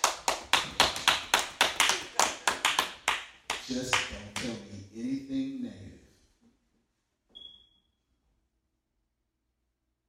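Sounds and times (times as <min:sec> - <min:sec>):
audience clapping rhythmically: 0:00.0 - 0:04.8
speech: 0:03.7 - 0:05.4.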